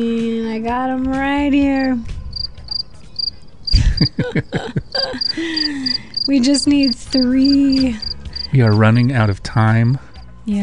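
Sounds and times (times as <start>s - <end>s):
speech: 0.0s - 2.1s, 4.0s - 10.6s
rhythmic high-pitched cricket chirps: 1.8s - 4.2s, 4.9s - 9.3s
louder talking or laughter: 3.4s - 10.0s.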